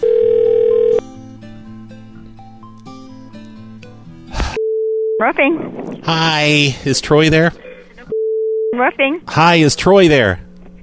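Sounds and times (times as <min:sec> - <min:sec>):
telephone ringing tone: 0:00.0 - 0:01.0, 0:08.1 - 0:08.8
speech: 0:05.2 - 0:07.6, 0:08.8 - 0:10.5.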